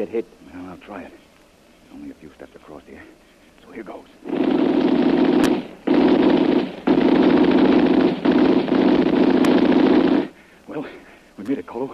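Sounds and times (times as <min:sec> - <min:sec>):
speech: 0:00.0 - 0:01.3, 0:01.9 - 0:05.8, 0:10.8 - 0:11.9
machine gun firing at someone crossing an exposed path: 0:04.2 - 0:10.4.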